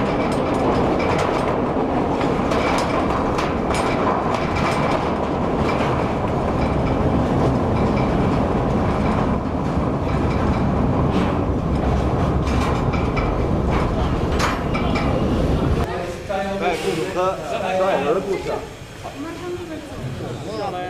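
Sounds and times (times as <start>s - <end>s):
workers' train running on rails through an open-pit mine: 0.0s - 20.8s.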